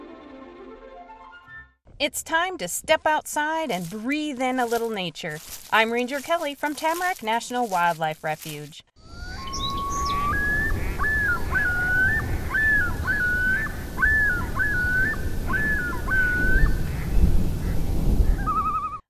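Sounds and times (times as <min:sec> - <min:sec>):
speech: 0:02.0 - 0:08.9
loon wailing call: 0:09.0 - 0:17.0, 0:18.3 - 0:19.0.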